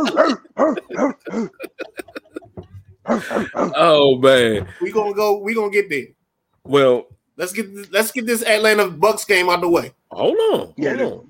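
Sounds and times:
person barking and yipping like a dog: 0.0s - 2.0s, 3.0s - 4.0s
laughter: 0.0s - 3.8s
speech: 3.2s - 11.2s.

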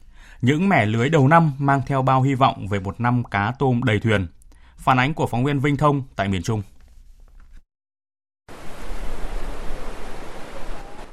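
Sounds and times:
speech: 0.4s - 6.7s
soft rustling: 6.6s - 7.6s
surf rolling onto a fishing-boat beach in Da Nang Vietnam: 8.5s - 11.1s.

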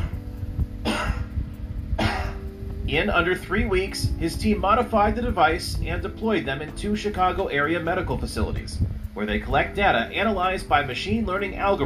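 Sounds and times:
low hum: 0.0s - 11.8s
harsh coughing: 0.8s - 1.3s, 2.0s - 2.4s
speech: 2.9s - 11.8s.

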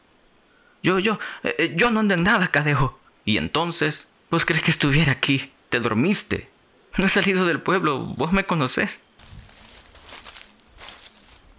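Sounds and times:
steady high-pitched insect drone: 0.0s - 11.5s
speech: 0.8s - 9.1s
boots crunching through dry undergrowth: 9.2s - 11.5s.

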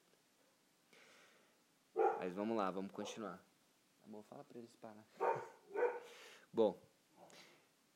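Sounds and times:
dog barking: 2.0s - 2.4s, 3.0s - 3.3s, 5.2s - 6.1s
dog noise: 2.0s - 3.3s, 5.2s - 6.1s
speech: 2.2s - 5.5s, 6.1s - 6.9s.

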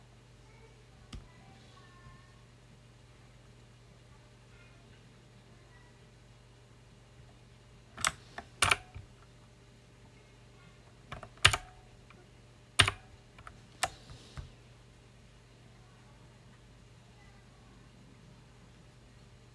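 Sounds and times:
low steady hum: 0.0s - 19.5s
mechanical keyboard clacks: 8.0s - 9.2s, 11.1s - 12.2s, 12.8s - 14.5s.

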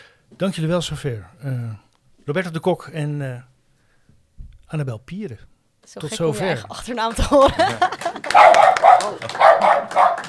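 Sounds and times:
speech: 0.3s - 3.5s, 4.7s - 10.2s
laughter: 7.0s - 9.8s
dog giving whining high-pitched barks: 8.3s - 10.2s.

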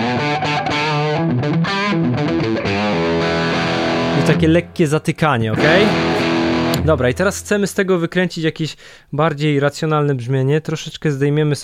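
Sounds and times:
guitar through heavily overdriven amp with compression: 0.0s - 4.6s, 5.5s - 7.7s
speech: 4.3s - 6.1s, 6.8s - 11.6s.

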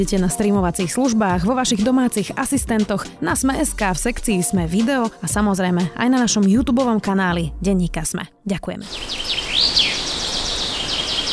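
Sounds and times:
speech: 0.0s - 9.8s
birdsong with high quick chirps and sweeping whistles: 8.8s - 11.3s
steady airy hiss of woodland background: 8.9s - 11.3s.

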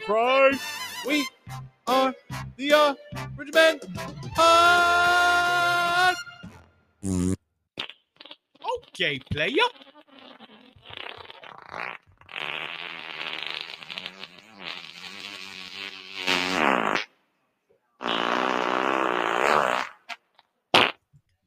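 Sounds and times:
speech: 0.1s - 5.4s, 9.0s - 9.9s
long wet fart: 7.0s - 17.2s, 18.0s - 21.0s.

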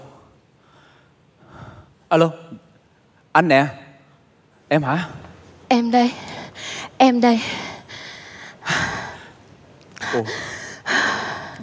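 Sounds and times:
speech: 2.1s - 2.6s, 3.4s - 3.8s, 4.7s - 6.3s, 7.0s - 7.7s, 10.1s - 10.5s
heavy labored breathing: 6.0s - 9.4s, 10.0s - 11.6s.

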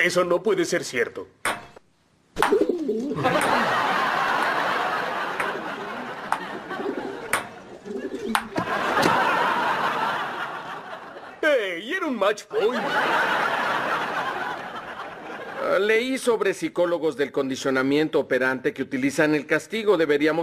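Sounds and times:
speech: 0.0s - 1.6s, 2.4s - 3.7s, 11.5s - 13.4s, 15.7s - 20.4s
steady wash of noise: 0.0s - 20.4s
laughter: 2.9s - 11.6s, 12.5s - 15.9s
pigeons cooing: 6.2s - 8.6s.

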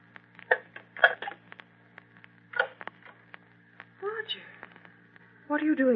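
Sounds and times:
telephone receiver being hung up: 0.5s - 1.4s, 2.5s - 2.8s
speech: 5.5s - 5.9s.

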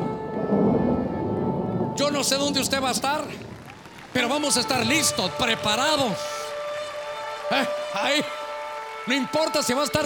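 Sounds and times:
thunder rumbling: 0.0s - 5.6s
rain hissing: 0.2s - 7.9s
speech: 2.1s - 3.5s, 4.1s - 6.4s, 7.5s - 8.4s, 9.0s - 10.0s.

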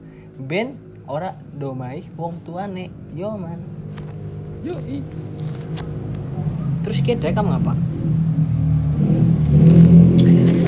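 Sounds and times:
speech: 0.4s - 3.8s, 4.6s - 9.2s
motorcycle engine revving through a loud noisy exhaust: 2.9s - 10.6s.

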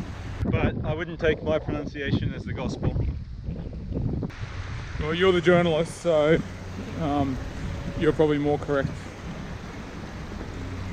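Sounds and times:
water flowing after recent rain: 0.0s - 0.4s, 4.3s - 10.9s
speech: 0.4s - 3.1s, 5.0s - 9.1s.

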